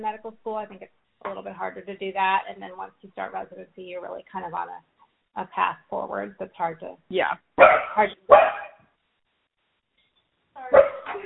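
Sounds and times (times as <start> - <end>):
speech: 0.0 - 8.7
dog barking: 7.6 - 8.8, 10.7 - 11.2.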